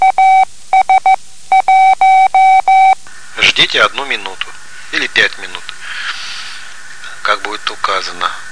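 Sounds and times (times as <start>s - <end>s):
Morse code tone sending the signal AS: 0.0s - 3.0s
speech: 3.7s - 5.7s, 7.4s - 8.4s.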